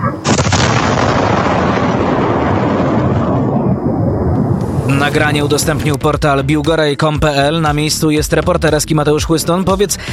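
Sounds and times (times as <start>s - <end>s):
cruise missile explosion captured by a security camera microphone: 0.2s - 6.4s
speech: 5.0s - 10.1s.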